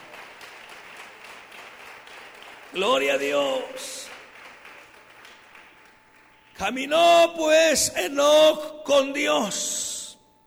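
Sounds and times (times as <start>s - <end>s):
congregation applauding during a church worship service: 0.0s - 6.8s
speech: 2.7s - 4.2s, 6.6s - 9.7s.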